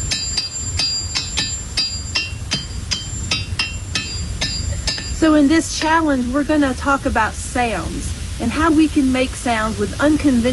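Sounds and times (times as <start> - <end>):
ringing rocks being struck: 0.0 - 6.0
speech: 5.2 - 10.5.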